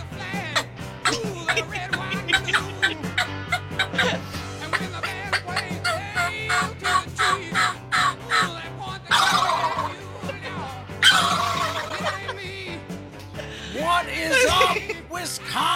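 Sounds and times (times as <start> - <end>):
laughter: 0.3 - 15.5
turkey gobbling: 1.0 - 12.4.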